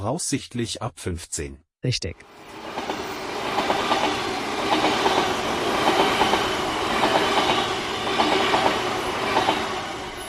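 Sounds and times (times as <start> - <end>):
speech: 0.0 - 2.8
train passing on rails: 2.2 - 10.2
train wheels clickety-clack on rails: 2.8 - 9.7.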